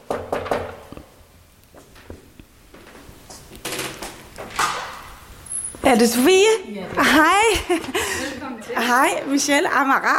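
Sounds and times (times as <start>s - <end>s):
knocking on a door: 0.0s - 0.8s
speech: 5.9s - 8.0s, 8.7s - 10.1s.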